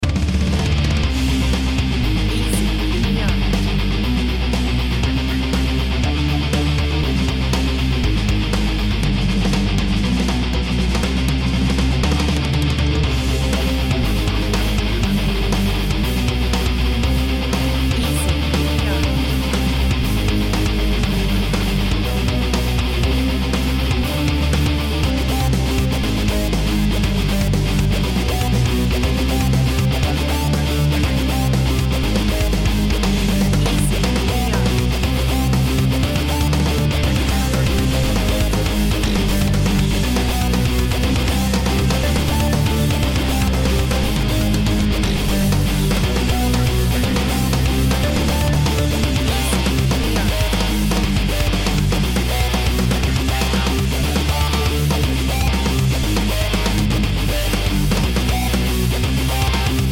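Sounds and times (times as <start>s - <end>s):
speed metal music: 0.0s - 59.8s.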